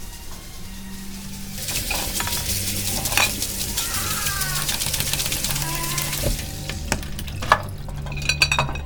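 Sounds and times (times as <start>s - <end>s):
scrubbing while cleaning: 0.2s - 8.8s.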